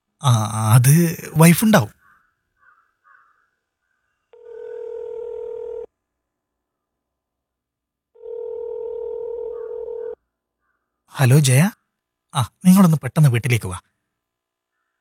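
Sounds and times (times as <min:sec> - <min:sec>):
speech: 0:00.2 - 0:02.0, 0:11.2 - 0:13.9
telephone ringing tone as a call is placed: 0:04.3 - 0:05.9, 0:08.2 - 0:10.2.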